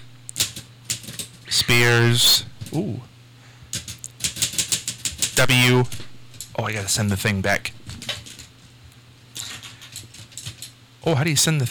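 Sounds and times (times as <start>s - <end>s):
typewriter keys pecked with one finger: 0.3s - 1.4s, 3.7s - 6.5s, 9.4s - 10.7s
speech: 1.5s - 3.1s, 5.4s - 6.0s, 6.6s - 7.8s, 11.1s - 11.6s.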